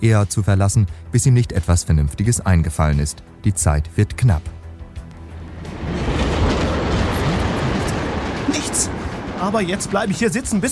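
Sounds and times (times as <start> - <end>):
speech: 0.0 - 4.6, 8.8 - 10.7
speeding train rumbling with rattling wheels on railway tracks: 4.9 - 10.7.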